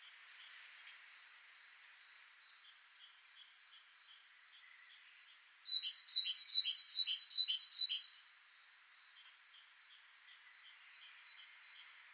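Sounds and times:
faint bird chirps: 0.0 - 12.1
Parus major great tit calling: 5.7 - 8.1.

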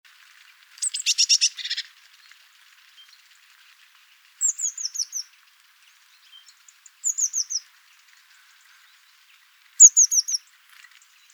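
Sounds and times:
Eurasian blue tit scolding: 0.8 - 1.9, 9.8 - 10.4.

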